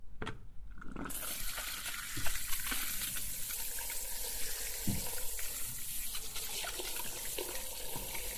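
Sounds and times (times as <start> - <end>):
tap water running for hair washing: 0.9 - 8.3.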